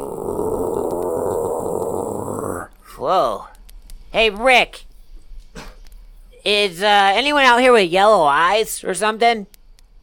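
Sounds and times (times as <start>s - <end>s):
dog growling: 0.0s - 2.7s
speech: 3.0s - 3.5s, 4.1s - 4.8s, 6.5s - 9.6s.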